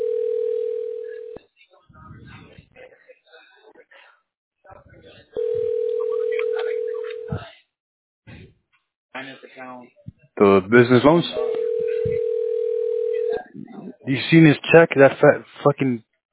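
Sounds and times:
phone line ringing tone: 0.0 - 1.4, 5.4 - 7.4, 11.4 - 13.4
talking: 1.1 - 7.6, 9.2 - 16.0
speech: 9.6 - 11.4, 14.1 - 16.1.

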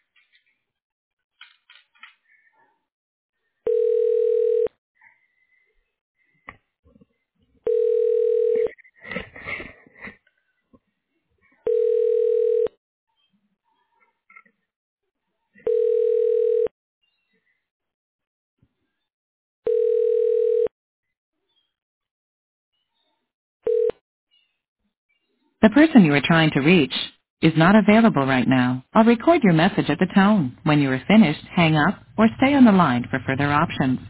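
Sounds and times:
telephone ringback tones while a call is transferred to voicemail: 3.7 - 4.7, 7.6 - 8.7, 11.7 - 12.7, 15.6 - 16.7, 19.7 - 20.7, 23.7 - 23.9
speech: 25.6 - 34.0.

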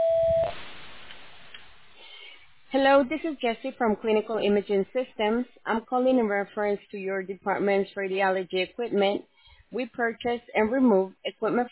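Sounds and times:
voicemail beep: 0.0 - 0.5
low hiss of open telephone line noise: 0.0 - 0.6
speech: 2.8 - 11.6.

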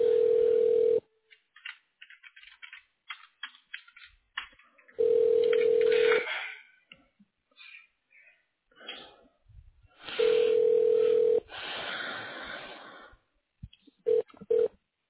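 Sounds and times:
ringback tone of a telephone call to an office extension: 0.0 - 1.1, 5.0 - 6.2, 10.1 - 11.5, 14.1 - 14.7.

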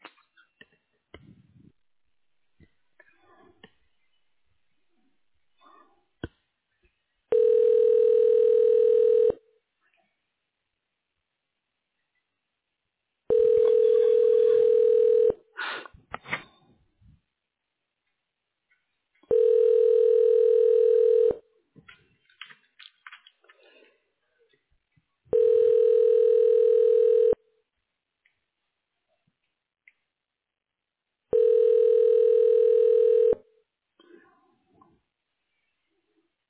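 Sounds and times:
telephone line tones while a call is transferred to a hospital office voicemail: 7.3 - 9.4, 13.3 - 15.4, 19.3 - 21.4, 25.3 - 27.4, 31.3 - 33.4.

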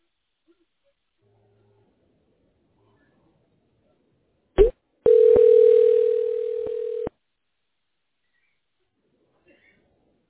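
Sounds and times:
telephone dial tone while placing a call: 5.1 - 7.1.

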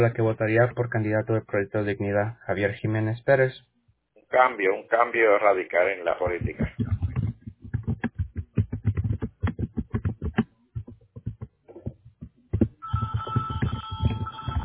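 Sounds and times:
speech: 0.0 - 3.7, 4.3 - 7.0
rapid, even tapping and clicking: 6.2 - 14.6
telephone ringing with an incoming call: 12.8 - 14.6.

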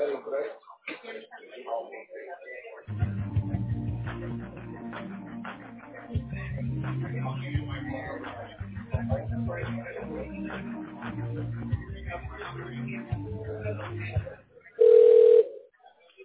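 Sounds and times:
low murmuring: 0.0 - 15.4
activity: 0.0 - 16.2
telephone line ringing tone as a call connects: 14.8 - 15.6.

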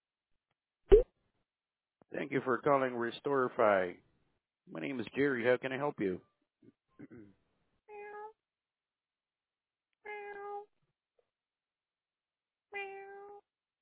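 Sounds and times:
speech: 2.2 - 4.1, 4.7 - 7.4
human voice imitating a cat meowing on a phone call: 12.8 - 13.4.

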